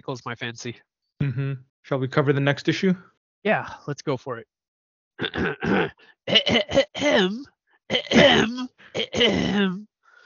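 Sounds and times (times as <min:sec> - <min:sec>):
speech: 0:00.0 - 0:04.5, 0:05.2 - 0:09.9
person giving a dainty cough to clear the throat: 0:05.2 - 0:09.8.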